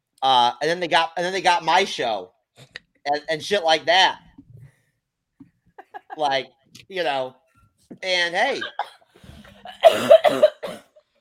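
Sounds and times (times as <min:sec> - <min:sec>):
speech: 0:00.2 - 0:04.2, 0:06.2 - 0:09.0, 0:09.8 - 0:10.8
laughter: 0:05.8 - 0:06.4
person coughing after swallowing down the wrong pipe: 0:08.6 - 0:11.0.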